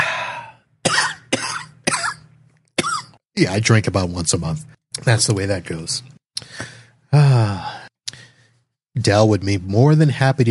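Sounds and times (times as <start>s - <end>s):
person coughing from an itch in the throat: 0.8s - 3.2s
speech: 3.4s - 7.8s, 9.0s - 10.4s.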